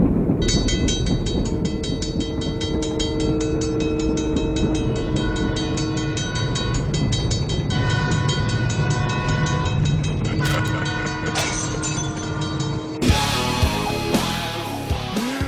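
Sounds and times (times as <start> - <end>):
heavy rumbling rail noise: 0.0 - 15.4
train horn blaring: 1.3 - 14.9
harsh metallic screeching: 3.2 - 14.7.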